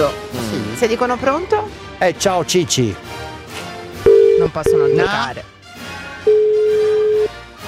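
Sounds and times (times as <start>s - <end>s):
speech: 0.8s - 3.3s, 4.4s - 5.5s
outgoing phone call ringing tone electronic beep: 4.1s - 5.2s, 6.3s - 7.3s.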